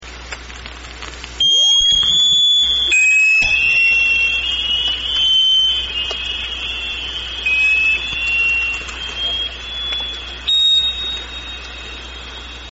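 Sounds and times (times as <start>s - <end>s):
SQS-53C sonar on a DDG: 1.4s - 12.7s.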